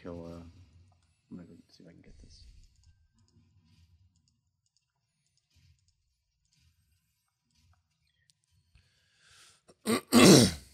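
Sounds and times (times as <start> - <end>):
person clearing throat during a video game session: 9.8 - 10.7.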